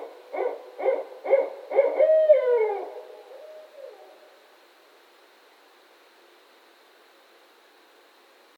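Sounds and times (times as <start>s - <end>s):
barred owl hooting: 0.0s - 4.4s.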